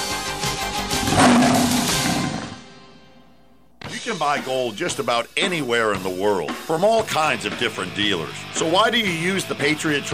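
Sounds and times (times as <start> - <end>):
deep rumbling big cat roar used as radio station identification: 1.0 - 2.8
speech: 4.1 - 10.1.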